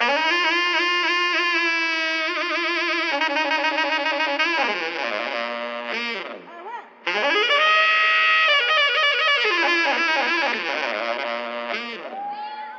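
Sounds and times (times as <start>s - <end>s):
saxophone twiddling loops: 0.0s - 12.7s.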